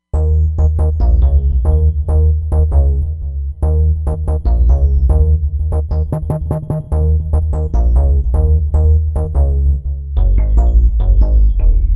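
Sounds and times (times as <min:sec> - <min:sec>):
Roland Fantom XR bass box: 0:00.0 - 0:11.9.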